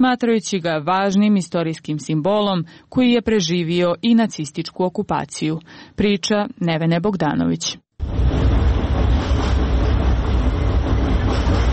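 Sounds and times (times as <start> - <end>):
speech: 0.0 - 8.1
tram rolling across the Old Sava Bridge over the Sava river: 8.0 - 11.7.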